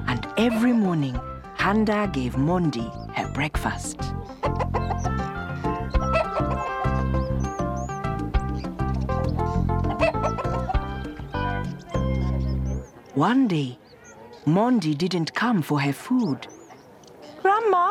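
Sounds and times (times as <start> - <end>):
speech: 0.4 - 4.2, 13.2 - 13.8, 14.4 - 16.5
black hen clucking: 4.2 - 13.1
busy steady noise: 10.9 - 17.8.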